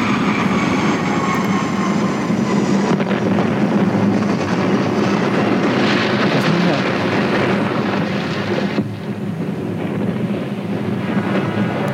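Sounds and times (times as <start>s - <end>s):
airplane engine roaring on departure: 0.0s - 11.9s.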